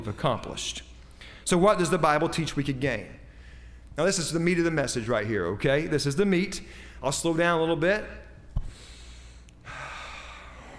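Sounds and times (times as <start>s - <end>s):
speech: 0.0s - 0.9s, 1.5s - 3.2s, 4.0s - 8.2s
quiet deep breath: 3.3s - 3.9s, 8.6s - 10.7s.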